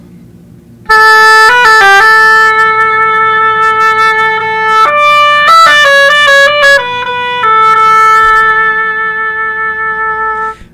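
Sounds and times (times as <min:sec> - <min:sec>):
oboe solo: 0:00.9 - 0:10.7.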